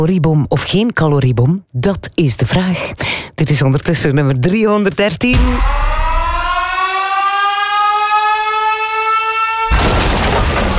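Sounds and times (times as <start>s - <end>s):
speech: 0.0s - 5.9s
wailing siren sound effect: 5.3s - 10.7s
explosion burst sound effect: 5.4s - 6.8s, 9.7s - 10.7s.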